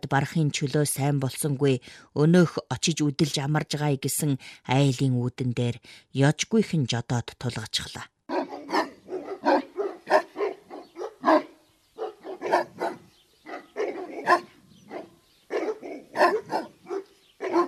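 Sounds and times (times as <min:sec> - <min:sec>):
speech: 0:00.0 - 0:08.1
guard dog barking hard and hoarsely: 0:08.3 - 0:17.6.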